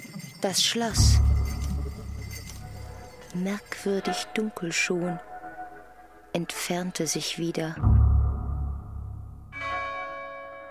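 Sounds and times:
bell ringing: 0.0s - 5.0s, 9.6s - 10.7s
speech: 0.4s - 1.4s, 3.4s - 5.3s, 6.4s - 8.0s.

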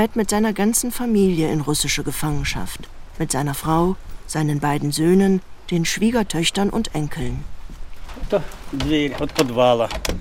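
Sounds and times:
speech: 0.0s - 7.6s, 8.2s - 10.2s
green wooden school cellar door hinges creaking open: 8.0s - 10.2s.

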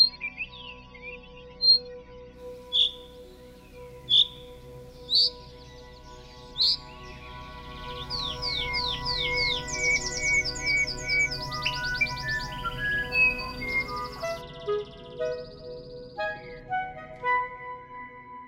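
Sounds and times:
bird repeating sharp high chirping calls used as a substitute for song: 2.6s - 7.1s, 7.7s - 17.0s.

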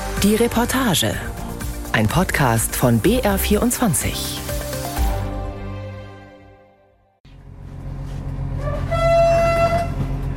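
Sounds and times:
speech: 0.2s - 1.4s, 1.9s - 4.4s
express train departing station with rumble and clatter: 7.3s - 10.3s
express train horn blasting: 8.5s - 10.3s.

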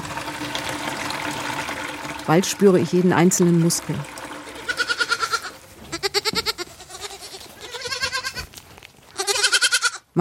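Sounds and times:
speech: 2.3s - 4.2s
young goats and lambs bleating in a wooden barn: 4.6s - 10.1s.

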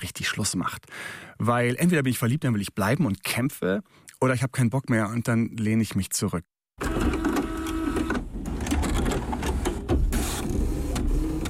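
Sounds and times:
speech: 0.0s - 7.2s
printer whirring and clattering as it prints an email: 6.8s - 11.4s.

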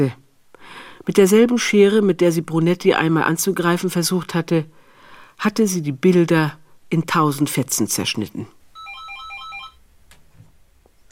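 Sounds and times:
speech: 0.0s - 0.2s, 1.0s - 4.8s, 5.4s - 8.6s
faint noise: 0.0s - 11.1s
telephone electronic ringtone at home: 8.7s - 9.8s.

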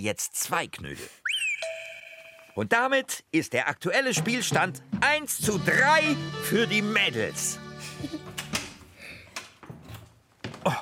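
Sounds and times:
speech: 0.0s - 1.3s, 2.6s - 8.4s
door opening: 8.2s - 10.7s.

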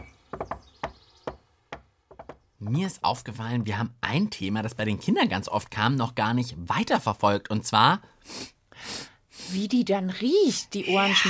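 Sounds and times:
rhythmic knocking on a door: 0.0s - 2.5s
speech: 2.7s - 11.2s.

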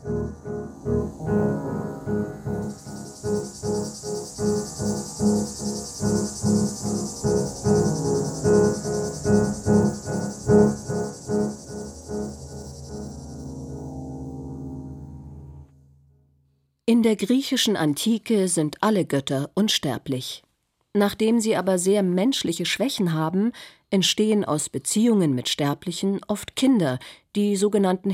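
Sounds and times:
cicada chirping: 0.0s - 15.5s
speech: 17.0s - 20.4s, 21.0s - 28.1s.

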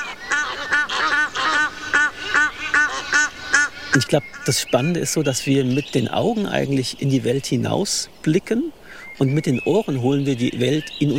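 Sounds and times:
Egyptian geese honking and calling while mating: 0.0s - 4.6s
speech: 4.0s - 11.1s.

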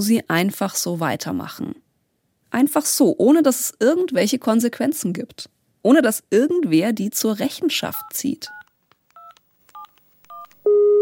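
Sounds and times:
speech: 0.0s - 1.8s, 2.5s - 8.6s
telephone keypad tones dialing a number to the police: 8.0s - 11.0s
steady telephone tone: 9.2s - 11.0s.

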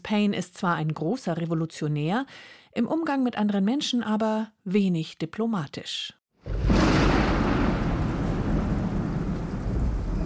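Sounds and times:
speech: 0.1s - 6.2s
thunder crash in a storm at sea: 6.4s - 10.2s
wind roaring in a storm at sea: 6.5s - 10.2s.

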